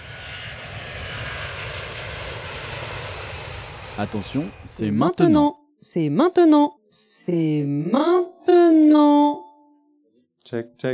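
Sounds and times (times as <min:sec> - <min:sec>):
airplane engines roaring during takeoff: 0:00.0 - 0:05.5
speech: 0:04.0 - 0:09.4, 0:10.5 - 0:10.9.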